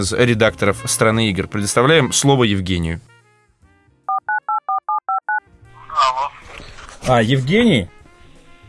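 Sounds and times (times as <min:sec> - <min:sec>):
speech: 0:00.0 - 0:03.2, 0:07.0 - 0:08.0
touch-tone dialing beeps: 0:04.1 - 0:05.4.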